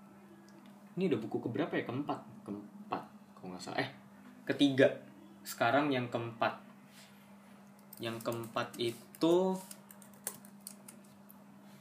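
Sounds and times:
steady low electrical hum: 0:00.0 - 0:11.7
speech: 0:01.0 - 0:06.7, 0:08.0 - 0:09.8
typing on a computer keyboard: 0:07.8 - 0:11.0.

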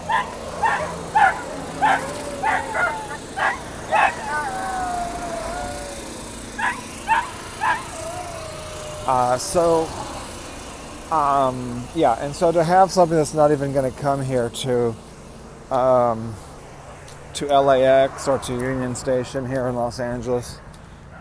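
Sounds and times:
several dogs barking outdoors: 0:00.0 - 0:10.7
low rumble of passing traffic outdoors in Los Angeles: 0:00.0 - 0:21.1
speech: 0:09.1 - 0:10.0, 0:11.1 - 0:15.0, 0:15.7 - 0:16.5, 0:17.4 - 0:20.6.

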